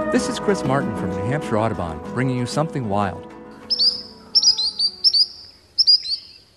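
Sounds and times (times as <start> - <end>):
speech: 0.2 - 3.3
spotted sandpiper shrill high-pitched calls: 3.6 - 6.5.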